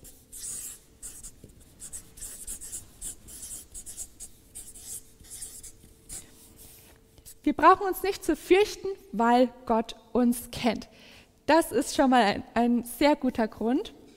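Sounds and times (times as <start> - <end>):
pen scratching across paper writing handwritten notes: 0.0 - 6.8
speech: 7.5 - 14.0.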